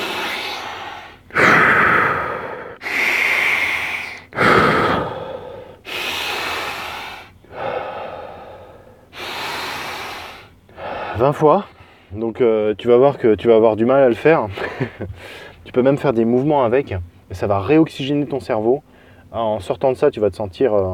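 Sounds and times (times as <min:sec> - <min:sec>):
forceful rapid breathing during a breathing exercise: 0:00.0 - 0:12.2, 0:14.5 - 0:15.6
speech: 0:11.2 - 0:20.9.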